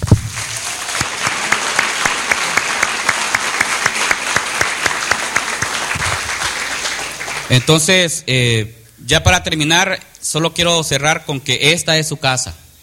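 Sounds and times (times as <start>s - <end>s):
sizable crowd applauding: 0.0s - 8.0s
speech: 7.5s - 12.6s.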